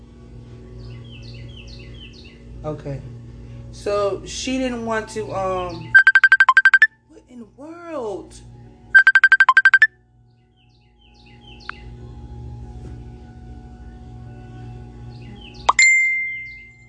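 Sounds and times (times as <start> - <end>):
speech: 2.6 - 3.2, 3.8 - 6.0
rapid electronic phone ringtone: 6.0 - 6.9, 9.0 - 9.9
sharp tone: 6.0 - 6.9, 9.0 - 9.9, 15.7 - 16.7.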